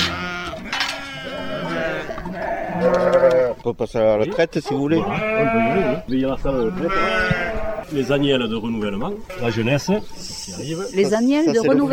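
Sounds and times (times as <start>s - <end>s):
flock of sheep bleating: 0.0s - 3.6s, 4.9s - 7.9s, 9.2s - 9.9s
speech: 2.8s - 11.9s.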